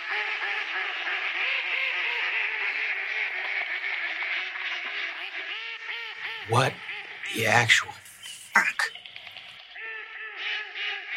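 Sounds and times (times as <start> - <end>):
chorus of many ducks quacking: 0.2 - 9.0
speech: 6.5 - 8.0.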